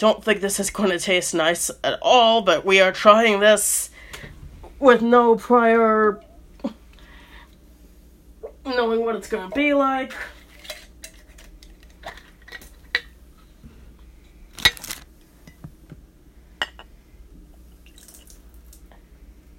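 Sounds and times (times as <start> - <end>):
speech: 0.0 - 6.8, 8.6 - 10.4
quiet hum: 0.0 - 19.5
liquid pouring and spilling from a square jar: 17.8 - 18.5.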